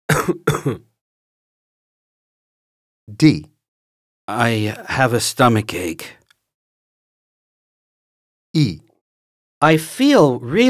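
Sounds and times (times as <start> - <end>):
harsh coughs: 0.1 - 0.9
speech: 0.3 - 0.9, 3.1 - 3.5, 4.3 - 6.2, 8.5 - 8.9, 9.6 - 10.6.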